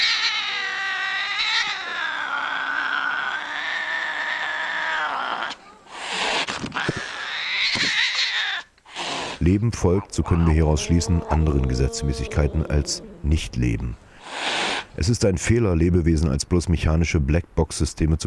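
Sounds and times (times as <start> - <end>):
cat wailing yowl: 0.0 - 9.4, 10.2 - 13.3
cat hissing and growling: 0.0 - 13.5, 14.1 - 15.0
speech: 9.4 - 14.0, 15.0 - 18.2.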